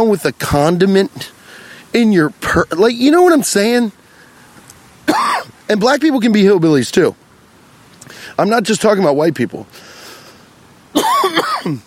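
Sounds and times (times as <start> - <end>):
speech: 0.0 - 4.0, 5.1 - 7.2, 8.4 - 9.8, 10.9 - 11.8
harsh throaty coughs: 5.1 - 5.5, 11.0 - 11.8.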